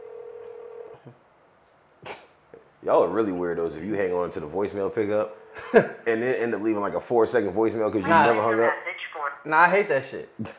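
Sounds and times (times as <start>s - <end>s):
electronic phone ring tone on the caller's end: 0.0s - 0.9s
speech: 1.0s - 1.2s, 2.8s - 10.5s.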